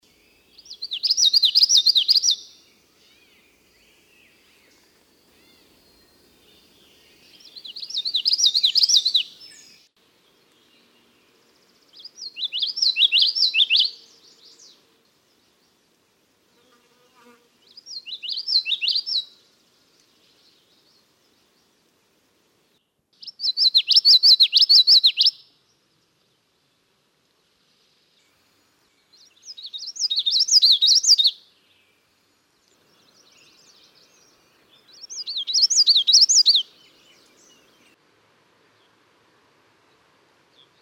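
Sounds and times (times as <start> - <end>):
common yellowthroat singing: 0.1 - 4.8, 5.4 - 9.9, 11.9 - 14.8, 17.7 - 19.4, 23.2 - 25.4, 29.1 - 31.7, 33.0 - 37.9.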